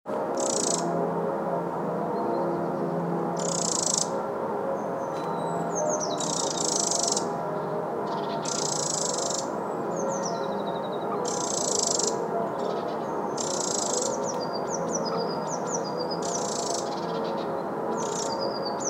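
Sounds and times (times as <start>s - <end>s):
constant low roaring noise: 0.1s - 18.8s
Eurasian wren giving dry buzzing rattles and thin chirps: 0.3s - 1.0s, 3.4s - 4.2s, 5.0s - 7.4s, 8.0s - 18.8s.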